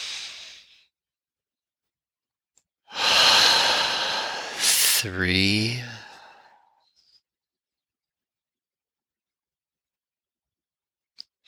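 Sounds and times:
deep breathing: 2.9s - 6.7s
speech: 5.0s - 5.9s.

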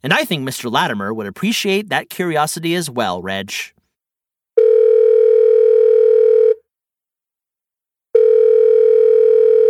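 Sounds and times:
speech: 0.0s - 3.8s
telephone ringing with an incoming call: 4.6s - 6.6s, 8.2s - 9.6s.

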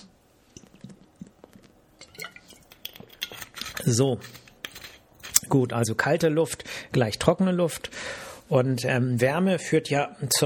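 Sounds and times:
person sipping and swallowing water: 0.4s - 3.6s
speech: 3.8s - 4.4s, 5.5s - 10.4s.

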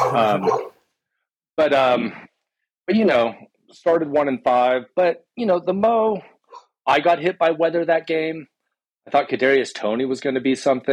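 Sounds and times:
dog barking with drawn-out harmonic yelps: 0.0s - 0.8s
speech: 0.1s - 0.7s, 1.6s - 2.3s, 2.9s - 10.9s.

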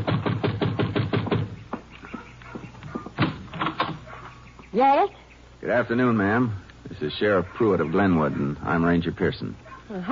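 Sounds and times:
firm knocks on a wooden door: 0.0s - 4.0s
speech: 4.8s - 10.1s.

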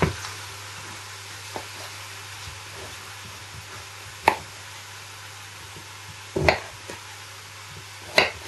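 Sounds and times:
steady hiss: 0.0s - 8.4s
knife chopping swede on a cutting board: 1.5s - 4.6s, 5.6s - 7.1s, 7.7s - 8.4s.

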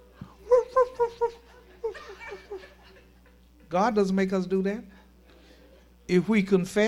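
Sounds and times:
person imitating a dog barking: 0.4s - 1.5s
laughter: 0.4s - 3.7s
speech: 3.7s - 4.9s, 6.1s - 6.8s.

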